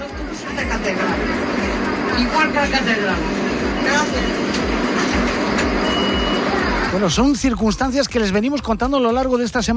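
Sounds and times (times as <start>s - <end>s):
city bus engine rumble: 0.0s - 7.1s
many standing passengers talking over one another on a city bus: 0.0s - 8.3s
rhythmic thumping inside a city bus: 0.0s - 9.7s
speech: 2.2s - 4.6s, 6.9s - 9.7s.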